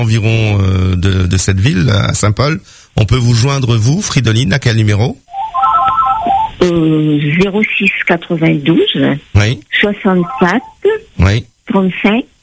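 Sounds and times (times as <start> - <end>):
speech: 0.0 - 5.3, 6.6 - 12.3
electronic phone ringtone with a stepped melody: 5.3 - 6.6, 10.3 - 10.8
voice over a thin band-limited telephone line: 10.0 - 10.9.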